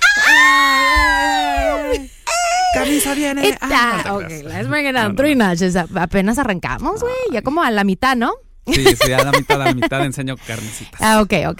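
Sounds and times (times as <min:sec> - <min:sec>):
girls screaming excitedly: 0:00.0 - 0:02.8
laughter: 0:01.6 - 0:04.4, 0:08.7 - 0:10.2
speech: 0:03.1 - 0:11.5.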